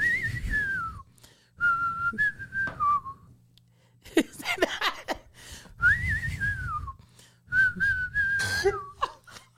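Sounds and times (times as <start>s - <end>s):
person whistling a twangy Western-style tune: 0.0s - 3.3s, 5.8s - 9.0s.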